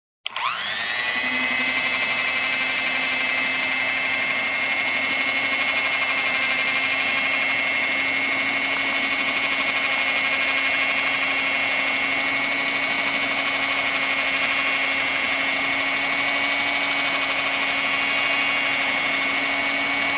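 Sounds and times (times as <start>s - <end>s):
electric hand mixer turned on and mixing: 0.2s - 20.1s.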